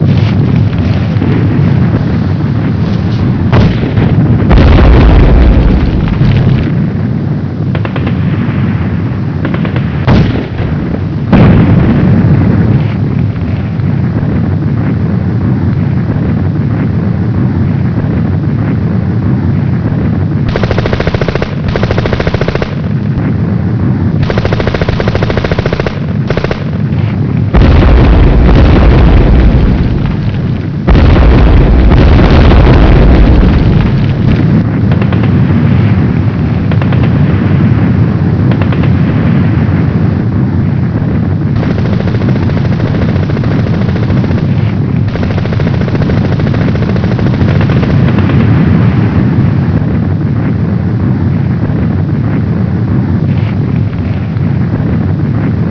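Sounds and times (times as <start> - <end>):
bombing explosions: 0.0 - 55.6.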